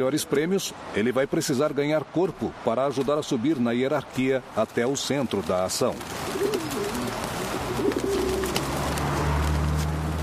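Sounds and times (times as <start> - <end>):
speech: 0.0 - 6.4
pigeons cooing in low throaty bursts: 5.8 - 9.3.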